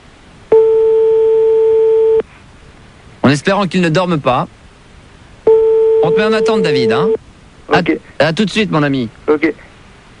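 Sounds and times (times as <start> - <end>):
telephone ringing tone on the line: 0.5 - 2.2, 5.5 - 7.2
speech: 3.3 - 4.6, 6.1 - 9.7.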